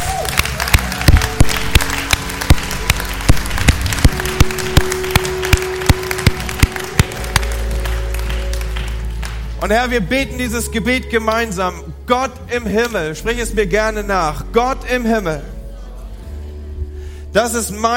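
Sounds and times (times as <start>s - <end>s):
small audience clapping: 0.0s - 10.4s
low sustained hum of music: 0.0s - 17.9s
speech: 9.6s - 15.5s, 17.3s - 17.9s.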